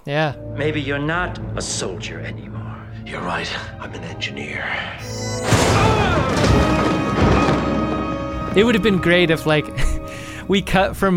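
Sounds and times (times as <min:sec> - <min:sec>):
speech: 0:00.0 - 0:06.6, 0:08.6 - 0:11.1
improvised explosive detonating: 0:05.3 - 0:08.2
crackling debris: 0:05.3 - 0:08.8.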